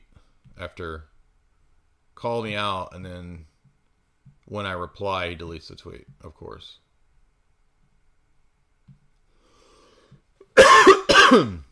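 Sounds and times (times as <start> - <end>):
speech: 0.6 - 1.1, 2.2 - 3.5, 4.5 - 6.8, 11.3 - 11.6
sharp loud coughs from someone suffering from allergies: 10.6 - 11.6.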